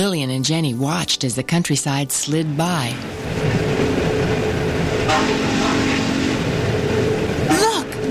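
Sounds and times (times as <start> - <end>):
speech: 0.0 - 3.5
coal-burning steam train running on rails: 0.0 - 8.1
steam train wheels rattling on rails: 2.8 - 8.1.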